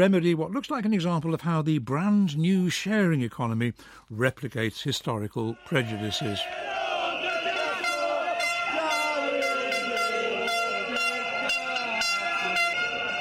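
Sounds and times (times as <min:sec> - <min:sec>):
speech: 0:00.0 - 0:06.8
crowd noise at a city centre street protest: 0:05.4 - 0:13.1
car horns honking at a taxi drivers' street protest in a city centre: 0:06.9 - 0:13.1.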